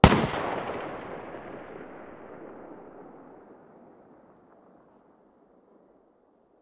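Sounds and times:
distant Galil rifle muzzle gunshot: 0.0s - 3.3s.

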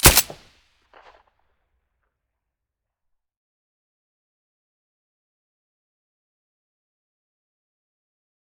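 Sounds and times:
M9A3 pistol with silencer: 0.0s - 0.4s.

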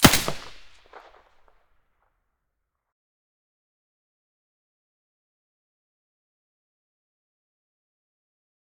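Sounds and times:
SA58 with silencer firing: 0.0s - 1.2s.

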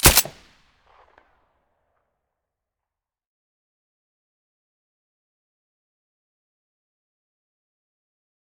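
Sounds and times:
M9A3 gunshot with silencer: 0.0s - 0.5s.

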